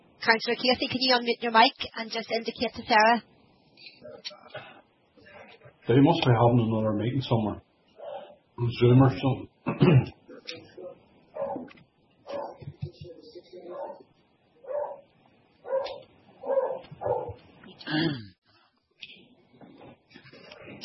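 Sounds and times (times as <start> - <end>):
speech: 0.2 - 4.8, 5.9 - 7.6, 8.6 - 10.6, 17.9 - 18.3
dog barking with higher yips: 8.0 - 8.4, 10.8 - 12.6, 13.7 - 17.4.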